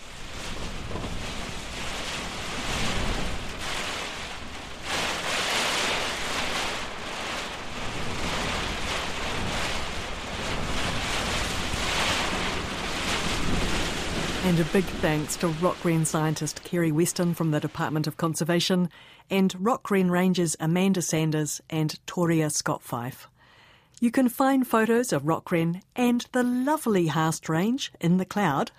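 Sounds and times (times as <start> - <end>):
heavy storm wind heard from inside a hut in the Haast Range: 0.0 - 16.0
heavy storm rain heard from inside a hut in the Haast Range: 0.0 - 18.4
speech: 14.5 - 23.3, 24.0 - 28.7.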